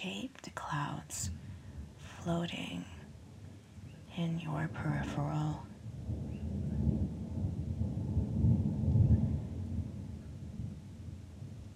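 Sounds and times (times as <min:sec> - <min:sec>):
speech: 0:00.0 - 0:01.5, 0:02.2 - 0:03.0, 0:04.2 - 0:06.2
faint rain-like hiss: 0:00.0 - 0:11.7
distant thunder rumbling: 0:04.5 - 0:11.7.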